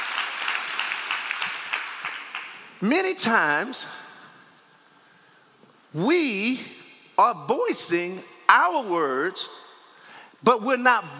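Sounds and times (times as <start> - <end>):
church congregation applauding: 0.0 - 2.8
speech: 2.8 - 4.0, 6.0 - 9.6, 10.4 - 11.1.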